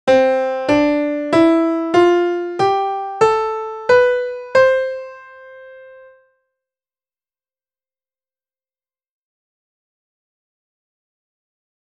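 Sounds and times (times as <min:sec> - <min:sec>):
C major scale played: 0:00.1 - 0:06.3.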